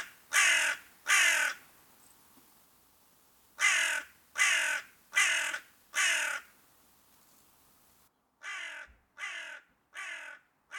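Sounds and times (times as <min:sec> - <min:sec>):
crow cawing: 0:00.0 - 0:01.6, 0:03.6 - 0:06.5, 0:08.4 - 0:10.7.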